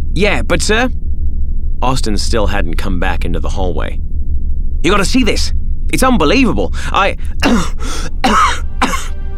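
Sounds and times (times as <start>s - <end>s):
speech: 0.1s - 1.0s, 1.8s - 4.0s, 4.8s - 9.0s
one person coughing short sharp coughs: 7.4s - 9.1s.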